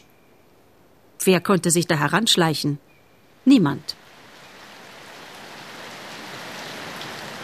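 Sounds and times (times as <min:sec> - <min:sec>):
speech: 0:01.2 - 0:04.0
heavy rain pouring down: 0:03.5 - 0:07.4.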